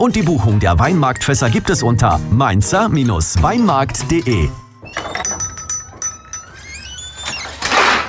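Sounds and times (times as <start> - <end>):
speech: 0.0 - 5.2
metal utensils clinking inside a drawer: 4.2 - 6.7
kitchen drawer sliding open: 6.5 - 8.0.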